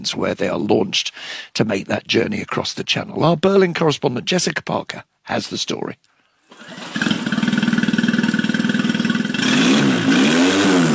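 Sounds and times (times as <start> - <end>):
speech: 0.0 - 6.1
outboard boat engine starting and revving: 6.5 - 10.9.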